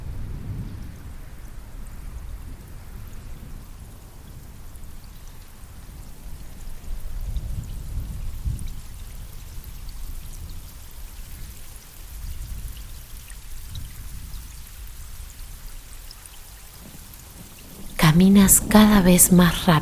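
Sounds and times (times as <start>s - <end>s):
heavy rain pouring: 0.0s - 19.8s
deep thunder rumbling: 16.8s - 19.8s
speech: 18.1s - 19.8s.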